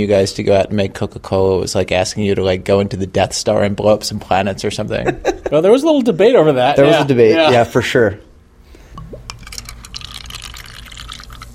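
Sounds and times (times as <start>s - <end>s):
speech: 0.0s - 8.3s
gurgle of poured soda: 8.9s - 11.5s
soda being poured into small cups and fizzing: 8.9s - 11.5s.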